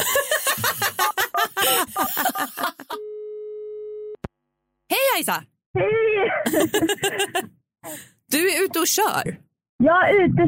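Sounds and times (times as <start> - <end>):
people laughing: 0.0 - 3.0, 6.5 - 8.0
outgoing phone call ringing tone: 3.0 - 4.2
speech: 5.2 - 10.4.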